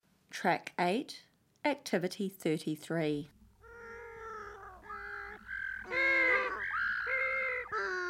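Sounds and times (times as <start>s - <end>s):
speech: 0.4s - 3.4s
group of penguins calling with harsh braying squawks: 3.6s - 8.0s.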